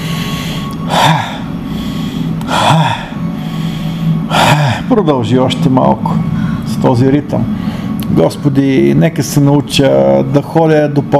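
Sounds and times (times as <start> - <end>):
forceful nasal breath bursts in a bhastrika breathing exercise: 0.0 - 4.9, 7.6 - 8.0
faint hum: 0.0 - 11.1
speech: 4.9 - 11.1.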